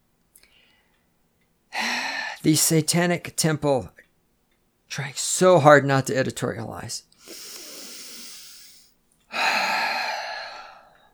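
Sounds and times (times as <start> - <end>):
speech: 2.4 - 4.0, 4.9 - 7.5
person taking a deep breath: 7.2 - 11.1.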